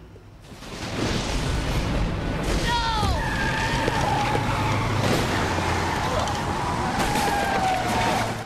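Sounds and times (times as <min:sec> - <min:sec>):
lorry engine and road noise rumbling: 0:00.0 - 0:08.4
white lorry tyres screeching while braking hard on a road: 0:03.1 - 0:08.4.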